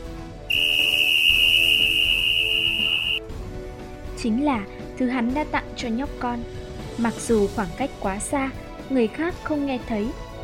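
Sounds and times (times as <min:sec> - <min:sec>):
soft music: 0:00.0 - 0:10.4
piercing whistle blast: 0:00.5 - 0:03.2
speech: 0:04.2 - 0:10.3.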